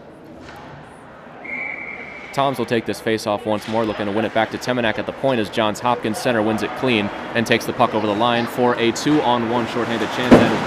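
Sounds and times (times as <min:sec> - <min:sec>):
constant noise: 0:00.0 - 0:10.6
referee's whistle at a college ice hockey game: 0:01.4 - 0:02.4
speech: 0:02.4 - 0:10.6.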